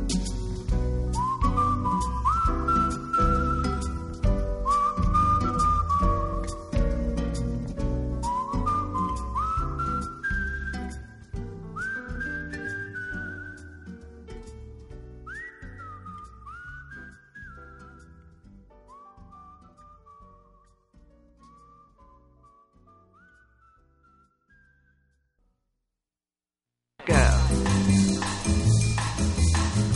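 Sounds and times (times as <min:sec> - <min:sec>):
bright whistle-like lead melody: 0:00.1 - 0:14.2, 0:15.2 - 0:25.4
recorded song with full band: 0:27.1 - 0:29.9.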